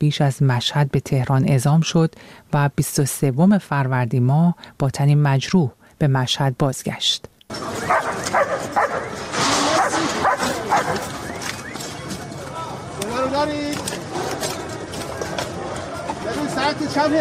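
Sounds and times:
speech: 0.0s - 8.8s, 16.4s - 17.1s
voices and commotion at a search and rescue scene: 7.5s - 17.1s
search and rescue dog barking and yipping: 7.8s - 11.3s.

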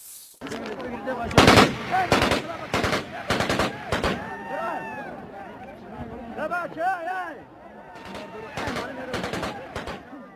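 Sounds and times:
crowd noise: 0.4s - 10.3s
repeated gunfire: 1.3s - 4.3s, 8.0s - 10.1s.

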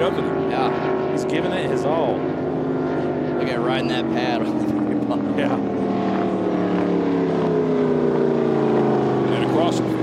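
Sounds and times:
speech: 0.0s - 2.6s, 3.4s - 5.9s
racing powerboat engine roaring at high speed: 0.0s - 10.0s.

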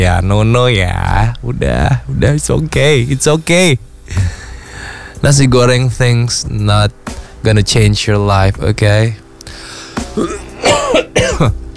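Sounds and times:
speech: 0.0s - 4.4s, 5.2s - 9.2s, 10.2s - 11.6s
harsh throaty coughs: 10.1s - 11.6s.

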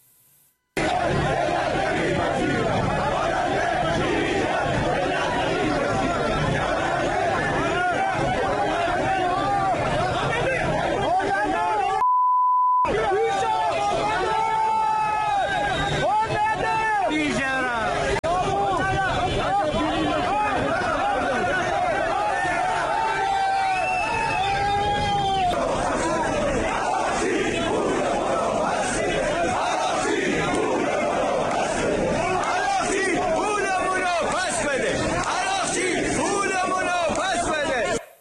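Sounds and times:
crowd of protesters chattering and shouting outside a ministry building in Tehran: 0.8s - 12.0s, 12.8s - 38.1s
brief electronic beep: 12.0s - 12.9s.

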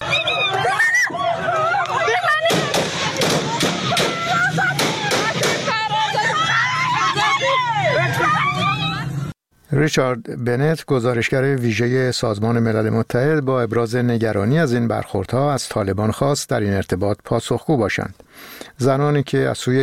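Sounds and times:
crowd of protesters shouting and chanting slogans: 0.0s - 9.2s
sharp bangs: 2.4s - 5.8s
speech: 9.8s - 19.8s.

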